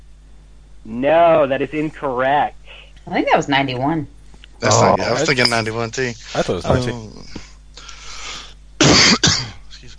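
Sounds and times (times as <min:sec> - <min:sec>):
speech: 0:00.8 - 0:07.4
person coughing: 0:08.8 - 0:09.7.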